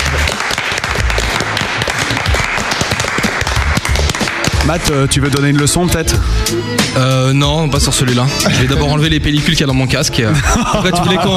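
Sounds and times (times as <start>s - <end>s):
small group applauding: 0.0s - 5.6s
speech: 4.7s - 11.3s
laughter: 8.4s - 9.1s, 10.2s - 11.3s.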